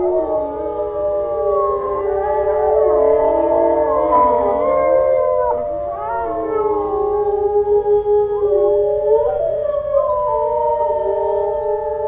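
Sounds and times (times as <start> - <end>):
wolf pack howling in chorus: 0.0 - 12.0.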